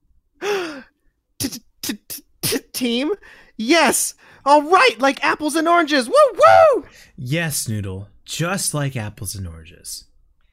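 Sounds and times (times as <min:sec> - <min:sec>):
person gasping: 0:00.4 - 0:01.0, 0:03.2 - 0:03.6
speech: 0:01.5 - 0:02.0, 0:02.8 - 0:10.1.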